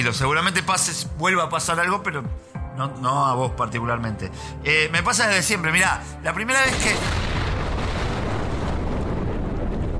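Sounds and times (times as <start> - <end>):
speech: 0.0 - 7.2
explosion rumble next door: 6.7 - 9.9.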